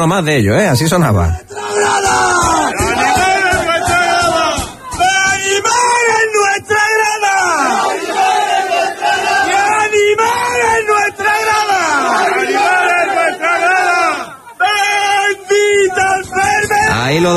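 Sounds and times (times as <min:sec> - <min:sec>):
speech: 0:00.0 - 0:02.5, 0:17.1 - 0:17.3
football player shouting and yelling, celebrating with supporters: 0:01.2 - 0:07.8, 0:09.5 - 0:12.0, 0:13.7 - 0:17.3
roaring crowd of supporters cheering and chanting: 0:01.4 - 0:17.3.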